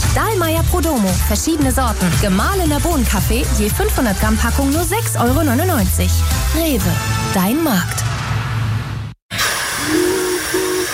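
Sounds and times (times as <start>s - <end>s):
speech: 0.2s - 8.1s
steam locomotive hissing steam: 9.3s - 10.9s.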